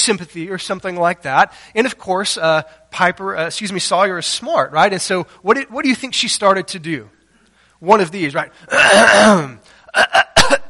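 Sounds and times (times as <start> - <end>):
speech: 0.0 - 7.2, 7.8 - 10.6
person imitating a young girl's fake cough: 8.7 - 10.6.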